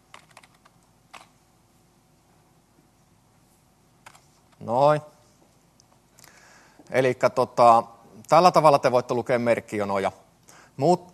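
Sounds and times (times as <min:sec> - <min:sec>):
computer keyboard typing: 0:00.1 - 0:01.4
speech: 0:04.6 - 0:05.1, 0:06.9 - 0:10.2, 0:10.8 - 0:11.1.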